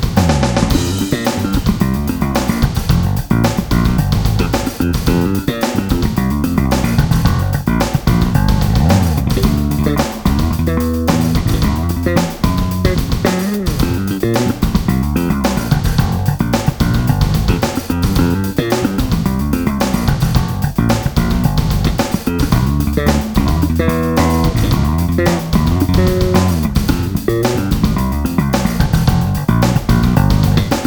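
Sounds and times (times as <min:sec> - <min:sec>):
slap bass: 0:00.2 - 0:30.8.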